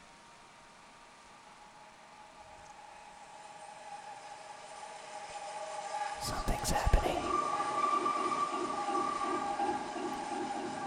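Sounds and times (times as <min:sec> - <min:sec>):
train rolling past with clacking rhythm: 0:01.8 - 0:10.8
speech: 0:06.2 - 0:07.5.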